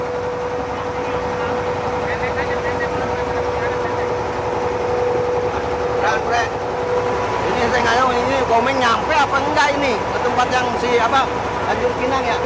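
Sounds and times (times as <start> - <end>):
boat engine droning on the water near Pulau Penyengat Riau Indonesia: 0.0 - 12.4
speech: 8.5 - 12.4.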